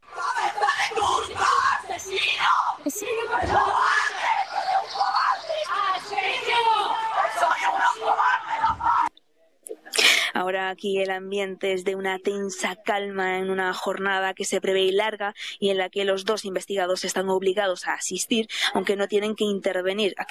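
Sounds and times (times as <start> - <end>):
crowd of local residents shouting angrily at a prison van: 0.0 - 9.1
speech: 10.7 - 20.2.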